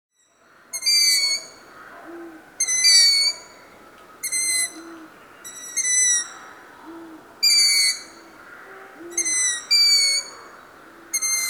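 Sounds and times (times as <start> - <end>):
long-eared owl squealing calls: 0.8 - 3.6, 4.2 - 6.5, 7.4 - 8.2, 9.0 - 10.5, 11.1 - 11.4.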